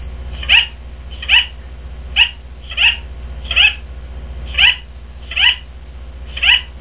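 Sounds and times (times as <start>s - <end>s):
parrot: 0.4s - 1.6s, 2.2s - 3.8s, 4.5s - 5.7s, 6.3s - 6.8s.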